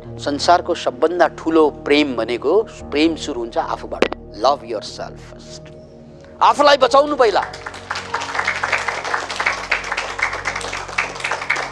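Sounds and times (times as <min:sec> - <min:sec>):
speech: 0:00.2 - 0:05.8, 0:06.4 - 0:07.8
audience clapping at a talk: 0:07.3 - 0:11.7.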